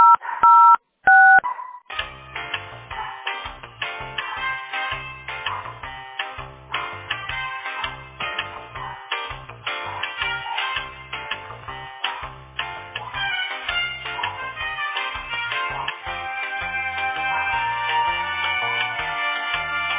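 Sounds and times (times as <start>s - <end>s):
touch-tone phone keypad beeps dialing an extension number: 0.0s - 1.4s
phone hold music with a steady bass line: 2.0s - 19.9s.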